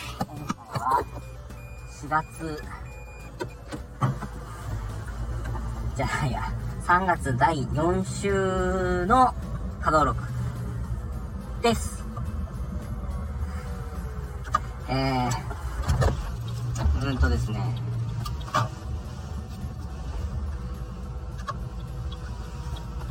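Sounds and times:
speech: 0:02.0 - 0:02.9, 0:06.0 - 0:10.3, 0:11.6 - 0:11.9, 0:14.9 - 0:15.5, 0:17.1 - 0:17.9
car passing on a road with low rumble and road noise: 0:04.0 - 0:23.1.

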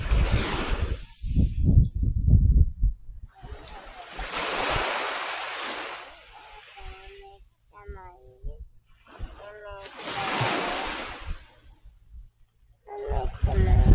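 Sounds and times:
small waves washing onto a seashore: 0:00.0 - 0:01.6, 0:03.3 - 0:11.9
rumbling wind buffeting a pin microphone: 0:00.0 - 0:05.1, 0:05.7 - 0:13.9.

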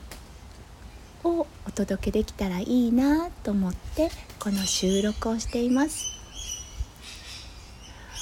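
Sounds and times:
wind rustling the trees: 0:00.0 - 0:08.2
speech: 0:01.2 - 0:06.2
birds chirping outdoors in the morning in Australia: 0:02.7 - 0:08.2.

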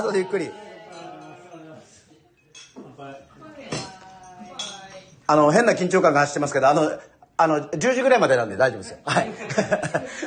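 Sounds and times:
speech: 0:00.0 - 0:00.7, 0:05.3 - 0:10.2
people's voices murmuring: 0:00.0 - 0:04.7
glasses clinking in a welcome toast at a snack bar: 0:00.0 - 0:05.3
laughter: 0:09.1 - 0:10.2.

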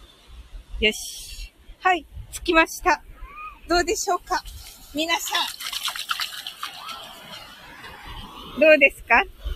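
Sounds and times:
speech: 0:00.8 - 0:03.1, 0:03.7 - 0:05.7, 0:08.6 - 0:09.4
ocean waves washing onto a beach: 0:04.2 - 0:09.5.

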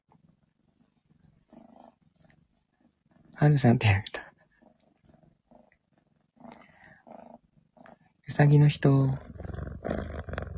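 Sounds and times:
cat purring: 0:00.0 - 0:10.5
speech: 0:03.4 - 0:04.2, 0:08.4 - 0:09.3.

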